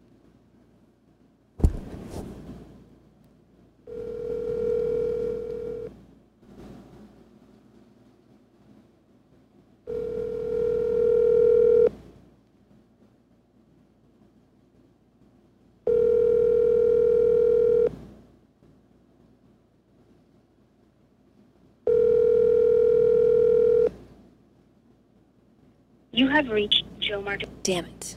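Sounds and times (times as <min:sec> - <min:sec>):
quiet noise: 0:00.0 - 0:28.1
phone ringback tone of an unanswered call: 0:03.9 - 0:05.9, 0:09.9 - 0:11.9, 0:15.9 - 0:17.9, 0:21.9 - 0:23.9
speech: 0:26.3 - 0:28.1.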